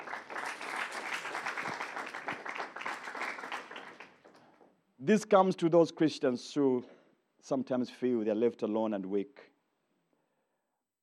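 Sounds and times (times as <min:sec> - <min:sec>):
audience clapping in a large room: 0:00.0 - 0:04.6
speech: 0:05.0 - 0:09.5.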